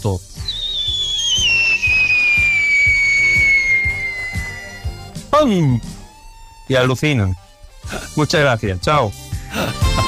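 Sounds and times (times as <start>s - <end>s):
speech: 0.0s - 0.4s, 5.4s - 5.9s, 6.7s - 7.4s, 8.2s - 9.9s
person mouth-whistling a falling tone imitating a firework rocket: 0.4s - 6.9s.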